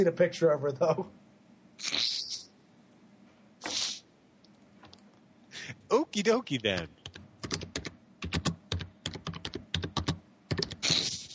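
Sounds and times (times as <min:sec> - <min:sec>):
speech: 0:00.0 - 0:01.2, 0:01.8 - 0:02.4, 0:05.9 - 0:07.0
typing on a computer keyboard: 0:06.8 - 0:10.9.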